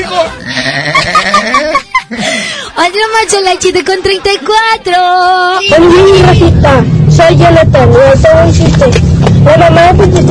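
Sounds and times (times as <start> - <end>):
laughter: 0.0 - 2.7
speech: 0.1 - 2.2, 2.8 - 10.3
person's voice imitating a cow's moo: 0.4 - 1.5.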